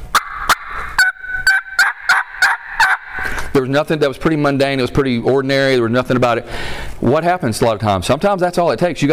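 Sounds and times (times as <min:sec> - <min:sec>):
light turkey clucks made on a hunting call: 0:00.0 - 0:03.6
speech: 0:03.6 - 0:09.1.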